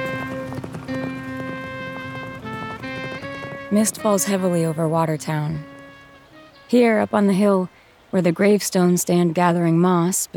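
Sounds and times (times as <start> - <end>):
horses' hooves clip-clopping as riders with loaded packs ride down a mountain: 0.0 - 7.2
sustained musical tones: 0.0 - 7.7
speech: 3.7 - 5.7, 6.7 - 10.3.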